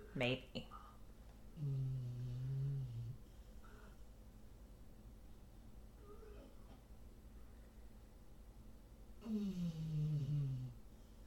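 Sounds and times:
steady hum: 0.0 - 11.2
speech: 0.2 - 0.8, 1.6 - 2.0
dog snoring: 1.5 - 4.0, 9.2 - 10.8.

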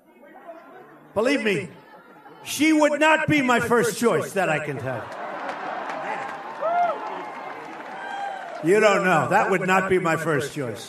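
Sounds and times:
large crowd cheering and roaring: 0.0 - 10.8
speech: 1.2 - 1.8, 2.4 - 5.2, 8.6 - 10.8.

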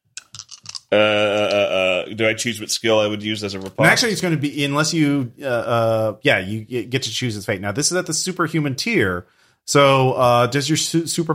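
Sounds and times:
dice rattling as a player rerolls: 0.2 - 1.6
speech: 0.9 - 11.3.

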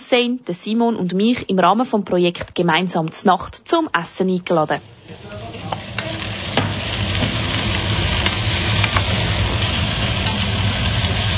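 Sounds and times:
speech: 0.1 - 5.8
asparagus risotto sizzling in a pan: 3.8 - 11.3.

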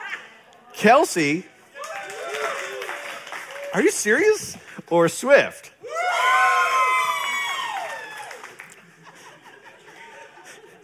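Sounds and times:
speech: 0.8 - 1.5, 3.7 - 6.0
loud audience screaming and cheering with high-pitched voices shrieking: 1.8 - 4.3, 5.8 - 8.8
laughter: 8.5 - 10.8.

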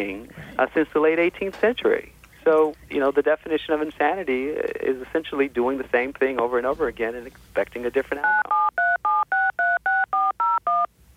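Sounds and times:
speech: 0.0 - 8.6
telephone keypad tones: 8.2 - 10.9.

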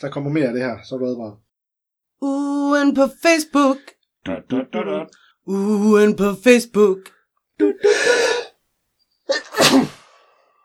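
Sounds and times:
speech: 0.0 - 1.4, 2.2 - 8.4
loud sneeze: 9.3 - 10.5.

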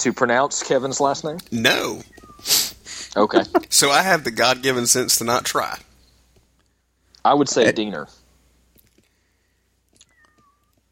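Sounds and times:
speech: 0.0 - 2.6, 3.2 - 5.9, 7.2 - 8.2
cat meowing: 10.0 - 10.7.

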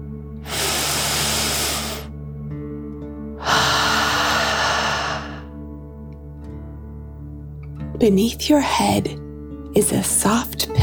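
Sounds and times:
deep breath in and out during a guided relaxation: 0.4 - 2.1, 3.4 - 5.6
speech: 8.0 - 9.2, 9.8 - 10.8.

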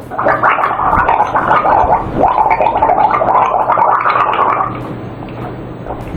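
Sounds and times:
person gargling urine: 0.1 - 4.9.

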